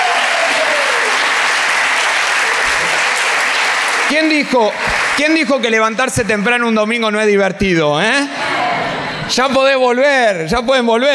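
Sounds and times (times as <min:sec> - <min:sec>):
crowd applauding with many hands clapping: 0:00.0 - 0:06.4
speech: 0:04.1 - 0:08.4, 0:09.3 - 0:11.1.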